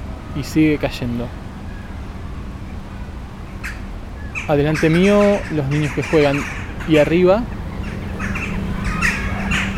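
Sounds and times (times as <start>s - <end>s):
steady low hum: 0.0s - 9.7s
speech: 0.4s - 1.4s, 4.5s - 7.6s
crows cawing and squabbling in treetops: 3.6s - 9.7s.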